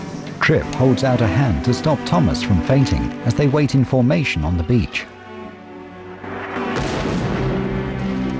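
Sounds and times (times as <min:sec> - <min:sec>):
speech: 0:00.5 - 0:05.1
distant naval cannon fire bombardment: 0:06.4 - 0:08.2.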